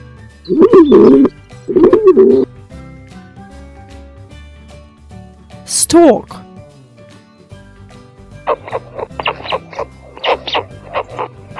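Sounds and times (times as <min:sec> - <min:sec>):
pigeon cooing: 0:00.5 - 0:02.5, 0:08.5 - 0:11.5
speech: 0:00.5 - 0:02.5, 0:05.8 - 0:06.4.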